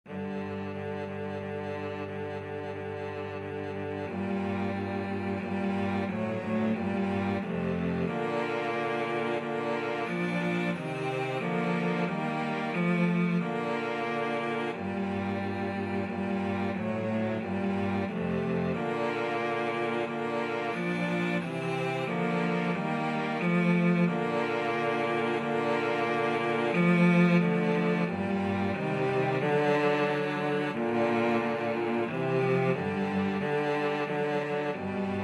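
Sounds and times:
cello trio playing a pavane: 0.0s - 35.2s.

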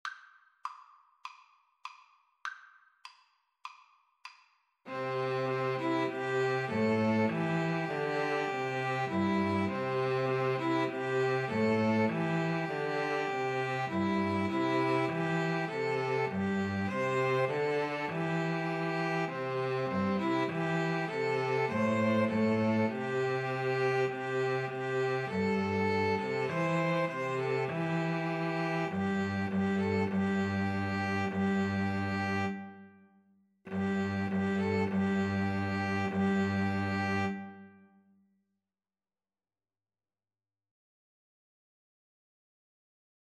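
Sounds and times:
string trio playing: 4.9s - 32.8s, 33.7s - 37.7s.

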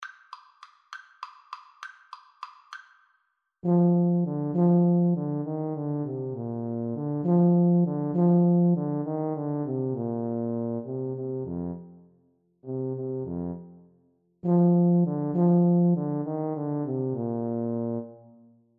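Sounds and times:
tuba duet: 3.6s - 12.0s, 12.7s - 18.5s.

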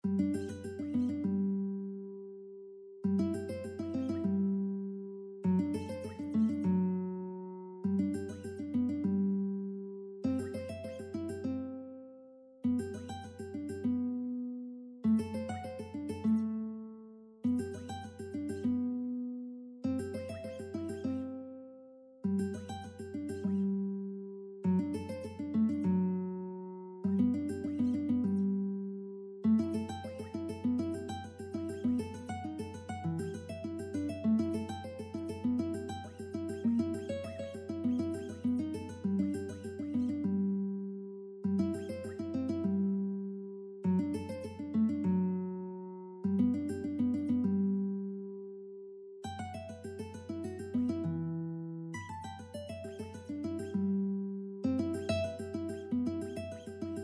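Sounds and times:
guitar: 0.0s - 57.0s.

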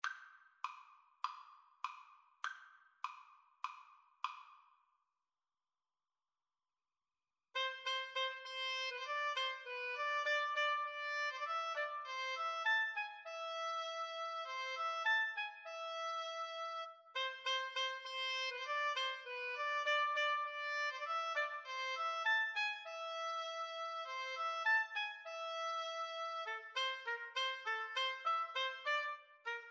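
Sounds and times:
two oboes playing: 7.6s - 29.6s.

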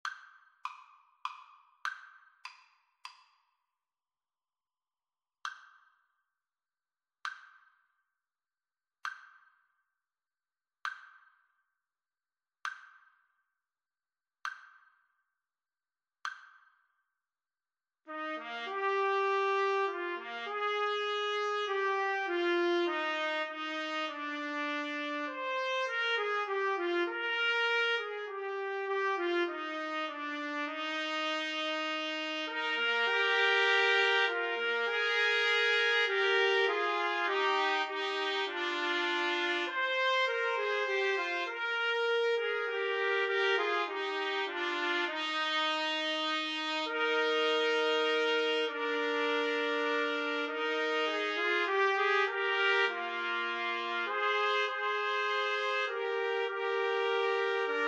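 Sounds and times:
trumpet trio playing karaoke backing: 18.1s - 57.8s.

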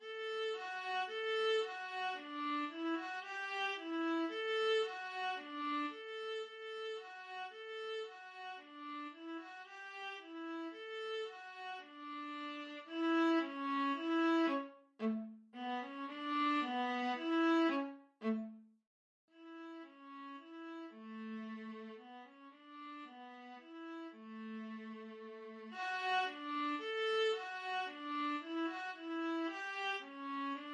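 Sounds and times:
folk tune played on a viola: 0.0s - 18.6s, 19.4s - 30.7s.

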